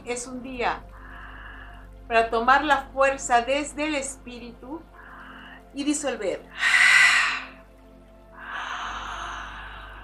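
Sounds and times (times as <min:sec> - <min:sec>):
speech: 0:00.1 - 0:01.0, 0:02.1 - 0:04.9, 0:05.7 - 0:06.8
deep breathing during a guided meditation: 0:00.9 - 0:02.1, 0:05.0 - 0:05.7, 0:06.6 - 0:07.6, 0:08.3 - 0:10.0.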